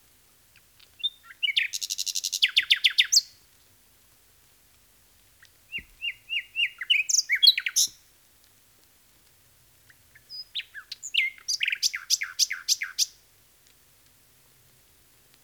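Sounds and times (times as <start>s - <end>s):
common nightingale singing: 0.6s - 3.4s, 5.4s - 8.1s, 9.8s - 13.2s.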